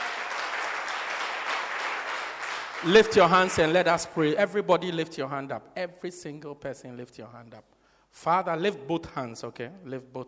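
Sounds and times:
crowd clapping: 0.0s - 4.0s
speech: 2.8s - 10.2s.

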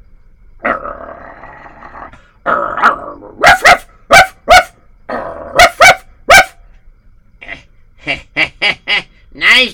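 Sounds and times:
dog growling near a gate: 0.6s - 3.4s, 5.1s - 5.7s
dog barking ferociously near a gate: 2.5s - 6.6s.

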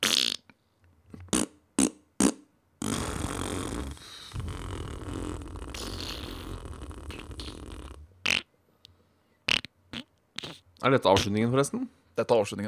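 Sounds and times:
farts: 0.0s - 0.4s, 1.2s - 8.5s, 9.5s - 10.6s
speech: 10.8s - 12.6s.

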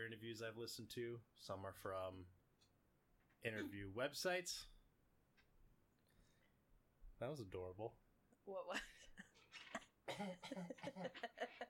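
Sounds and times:
speech: 0.0s - 2.4s, 3.4s - 4.8s, 7.2s - 9.4s, 10.1s - 11.6s
person clearing throat: 10.1s - 10.8s
laughter: 10.4s - 11.6s.

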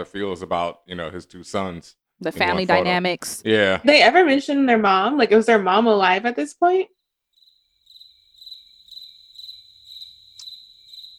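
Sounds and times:
speech: 0.0s - 7.0s
crickets chirping in a continuous high trill: 6.9s - 11.1s.

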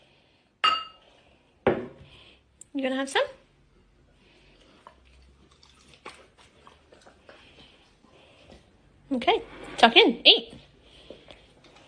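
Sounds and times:
glasses clinking in a toast: 0.6s - 1.0s
speech: 2.8s - 3.4s, 9.2s - 10.6s.

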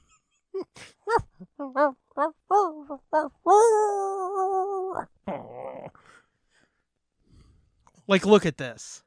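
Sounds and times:
woman yipping like a puppy: 0.6s - 5.1s
speech: 1.6s - 4.1s, 5.0s - 5.4s, 8.1s - 9.0s.

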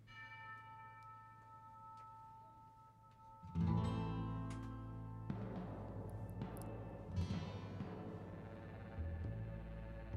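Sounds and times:
bell ringing with long shimmering overtones in theme music: 0.0s - 8.1s
fuller band including Spanish guitar playing theme music: 3.6s - 10.0s.

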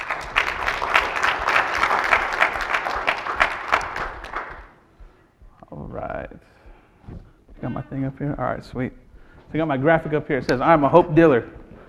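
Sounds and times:
audience applause for performers: 0.0s - 4.8s
speech: 7.6s - 11.6s.

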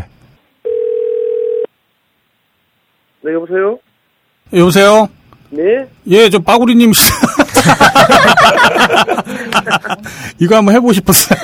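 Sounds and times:
faint noise: 0.0s - 11.4s
telephone ringback tone while placing a call: 0.6s - 1.7s
speech: 3.3s - 3.9s, 4.5s - 9.1s, 9.7s - 11.4s
laughter: 7.0s - 10.2s, 11.1s - 11.4s.

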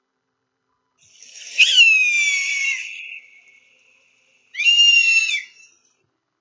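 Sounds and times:
eagle's loud shrill cry: 1.3s - 3.6s, 4.6s - 5.7s.

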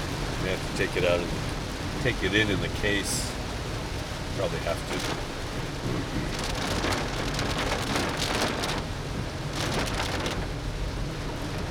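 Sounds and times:
heavy rain pouring on surfaces: 0.0s - 11.7s
speech: 0.4s - 3.4s, 4.4s - 8.0s
low rumble: 4.8s - 11.1s.

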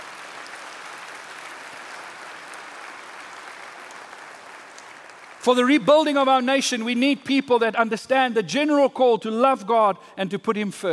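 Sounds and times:
crowd clapping steadily: 0.0s - 6.2s
speech: 5.4s - 10.9s.

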